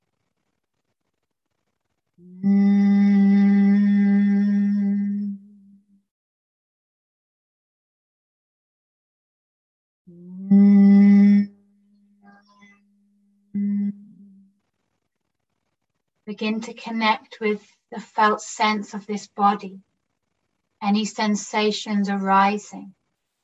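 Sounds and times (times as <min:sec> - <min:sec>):
low nasal hum of humming bee breath: 0:02.2 - 0:05.8, 0:10.1 - 0:12.9, 0:13.6 - 0:14.5
speech: 0:16.3 - 0:19.9, 0:20.8 - 0:23.0.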